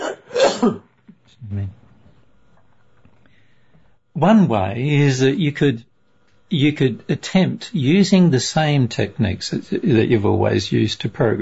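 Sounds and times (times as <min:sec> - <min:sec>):
person coughing: 0:00.0 - 0:00.9
speech: 0:00.6 - 0:01.8, 0:04.2 - 0:05.9, 0:06.5 - 0:11.4.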